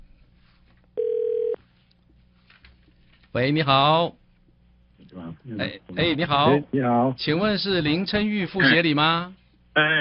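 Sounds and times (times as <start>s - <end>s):
electronic telephone ring tone: 1.0s - 1.6s
speech: 3.3s - 4.2s, 5.1s - 9.9s.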